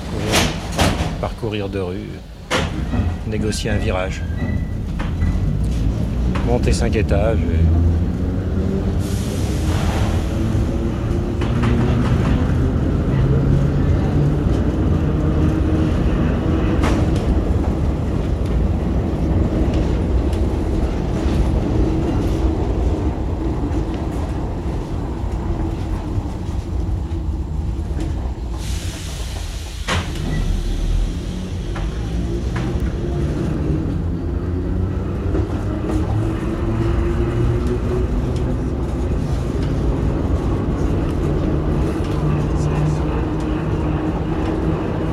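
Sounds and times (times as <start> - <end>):
train rumbling and rattling: 0.0 - 45.1
speech: 1.2 - 4.8, 6.5 - 9.2
burst of hiss: 9.0 - 10.3.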